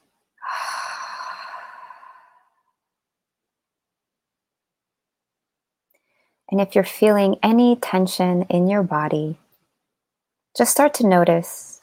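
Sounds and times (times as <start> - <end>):
deep sigh-like breath exhale during a guided meditation: 0.4 - 2.7
speech: 6.5 - 9.4, 10.6 - 11.7.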